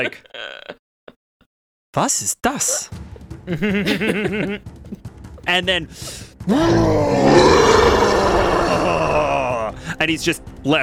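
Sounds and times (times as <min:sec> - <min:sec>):
speech: 0:00.0 - 0:00.8, 0:02.0 - 0:07.5, 0:10.0 - 0:10.8
laughter: 0:03.5 - 0:04.6
person roaring in imitation of a frilled lizard: 0:06.5 - 0:09.7.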